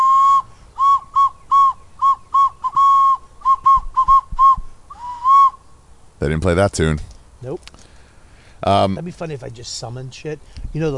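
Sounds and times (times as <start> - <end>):
ancient clay jaguar whistle being blown: 0.0 - 5.6
speech: 6.2 - 7.7, 8.6 - 10.9.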